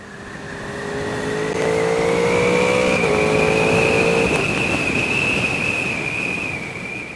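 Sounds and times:
wind roar from the rider's open helmet visor: 0.0 - 7.1
motorcycle engine revving hard with VTEC wail: 0.1 - 5.5.

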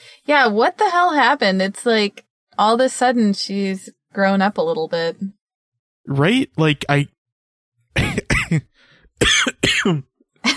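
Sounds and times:
speech: 0.2 - 5.4, 6.1 - 7.2, 8.5 - 10.5
person coughing and choking: 8.0 - 10.5.

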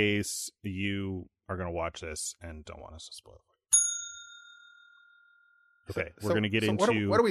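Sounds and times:
speech: 0.0 - 3.5, 5.9 - 7.2
single bright metallic bell ding: 3.7 - 5.7.

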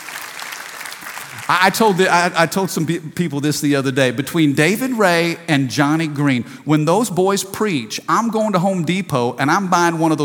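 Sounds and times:
audience clapping hands: 0.0 - 2.2
speech: 1.4 - 10.2.

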